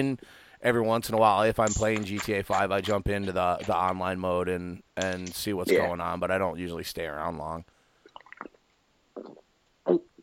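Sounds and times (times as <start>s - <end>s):
speech: 0.0s - 7.8s
person gulping red cream soda: 8.0s - 10.2s.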